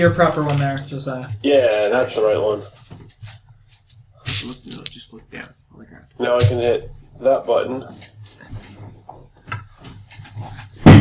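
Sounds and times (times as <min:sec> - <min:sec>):
speech: 0:00.0 - 0:03.3, 0:04.4 - 0:08.1
wooden chair knocked while searching under a table: 0:08.9 - 0:10.9.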